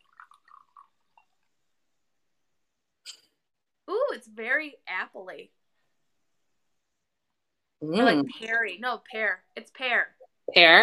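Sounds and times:
white wine pouring into a glass: 0:00.0 - 0:01.6
speech: 0:04.2 - 0:05.6, 0:07.8 - 0:10.8.

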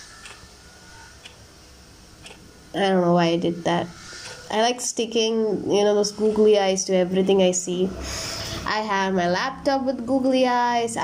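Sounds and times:
wall clock ticking: 0:00.0 - 0:00.5, 0:01.2 - 0:01.4, 0:02.2 - 0:02.4, 0:04.2 - 0:04.5
faint steady room hiss: 0:00.0 - 0:11.0
speech: 0:02.7 - 0:11.0.

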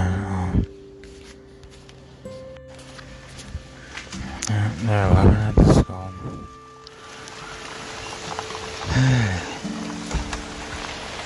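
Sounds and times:
soft rain patter: 0:00.0 - 0:11.2
steady rain falling: 0:03.8 - 0:11.2
speech: 0:04.8 - 0:05.4.

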